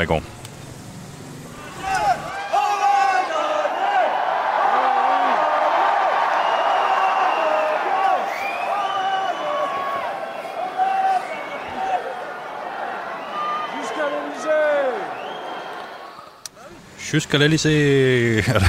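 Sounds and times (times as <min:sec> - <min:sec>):
speech: 0:00.0 - 0:00.4, 0:17.1 - 0:18.6
large excited crowd of political supporters chanting a French victory slogan: 0:01.5 - 0:16.3
laughter: 0:18.3 - 0:18.6.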